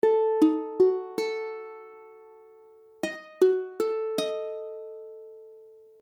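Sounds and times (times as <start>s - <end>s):
ukulele playing Ebdim chord: 0.0s - 6.0s.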